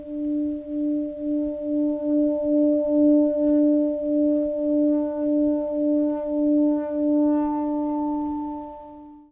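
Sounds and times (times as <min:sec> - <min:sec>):
singing bowl: 0:00.0 - 0:09.3.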